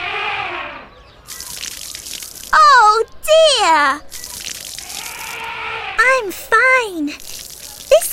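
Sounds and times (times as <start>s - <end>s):
shower water running: 1.3s - 2.6s, 4.1s - 5.5s, 7.1s - 8.1s
speech: 3.0s - 4.1s, 6.1s - 7.2s.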